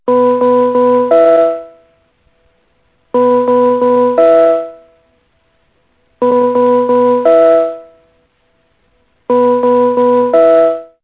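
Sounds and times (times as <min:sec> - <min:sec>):
radio interval signal: 0:00.1 - 0:01.9, 0:03.2 - 0:05.1, 0:06.2 - 0:08.2, 0:09.3 - 0:11.0.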